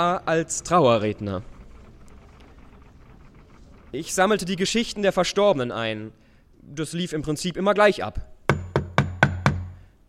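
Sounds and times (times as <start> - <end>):
speech: 0.0 - 1.5, 3.9 - 8.3
firm knocking on a wooden door: 8.5 - 9.8.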